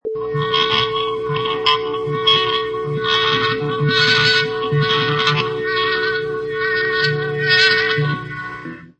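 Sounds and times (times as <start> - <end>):
distorted guitar feedback: 0.0 - 8.9.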